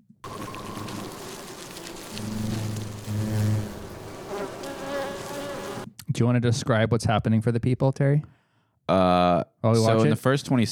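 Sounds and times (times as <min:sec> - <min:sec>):
crackling background: 0:00.2 - 0:05.9
giant hornets and European honeybees buzzing: 0:00.2 - 0:05.9
speech: 0:06.2 - 0:10.7.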